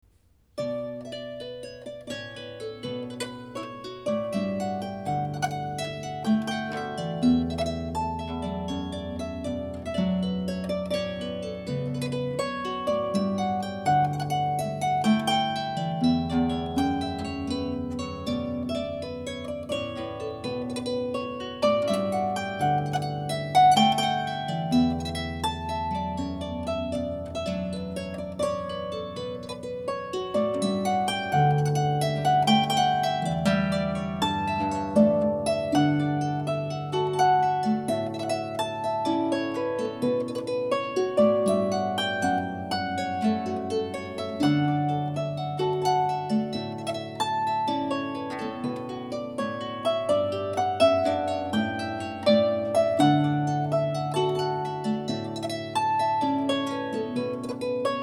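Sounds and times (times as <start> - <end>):
solo harp: 0.0 - 58.0.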